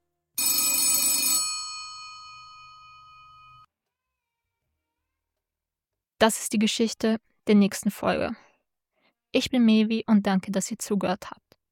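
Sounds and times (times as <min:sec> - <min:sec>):
old-style telephone bell ringing at the police in Vallejo: 0:00.4 - 0:03.7
speech: 0:06.2 - 0:08.5, 0:09.3 - 0:11.4.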